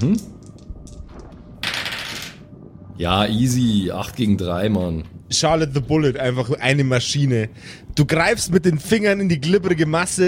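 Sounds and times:
speech: 0.0s - 0.4s, 3.0s - 10.2s
dice rolling across a hard surface: 1.6s - 2.4s.

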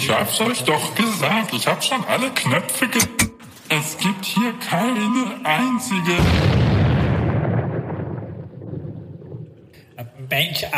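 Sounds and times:
speech: 0.0s - 6.7s, 10.0s - 10.7s
loud deep explosion: 6.2s - 10.0s.

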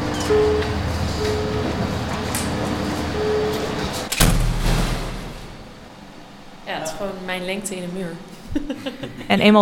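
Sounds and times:
heavy door in a thick concrete wall swinging open: 0.0s - 6.0s
faint mechanical hum: 0.0s - 9.5s
heavy door settling with a clunk and boom: 4.0s - 5.8s
speech: 7.0s - 9.5s
laughter: 8.4s - 9.5s.

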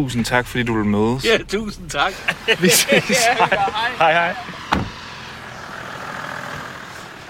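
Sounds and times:
speech: 0.0s - 4.6s
Range Rover engine humming: 0.0s - 7.2s
laughter: 2.1s - 4.6s
brief thump: 4.7s - 5.0s.

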